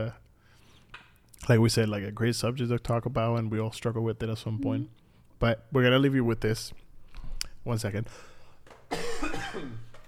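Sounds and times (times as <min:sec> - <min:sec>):
speech: 0:00.0 - 0:00.2, 0:01.4 - 0:06.8, 0:07.6 - 0:08.3
person coughing harshly: 0:08.9 - 0:09.9.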